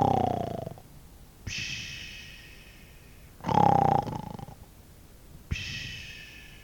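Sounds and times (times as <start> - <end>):
man snoring in his sleep on grass: 0.0 - 0.8, 3.4 - 4.6.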